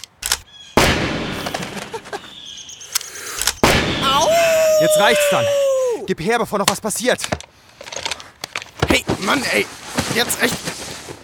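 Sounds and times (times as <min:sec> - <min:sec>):
handgun gunshots: 0:00.2 - 0:01.6, 0:02.9 - 0:04.0
speech: 0:04.8 - 0:07.4, 0:09.3 - 0:10.8.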